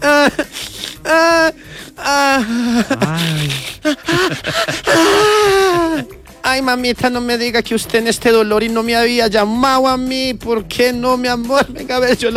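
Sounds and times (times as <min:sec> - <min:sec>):
young woman crying and wailing: 0:00.0 - 0:06.1
young woman's sobbing gasps: 0:00.0 - 0:06.3
laughter: 0:00.0 - 0:12.3
speech: 0:00.2 - 0:04.6, 0:06.6 - 0:12.3.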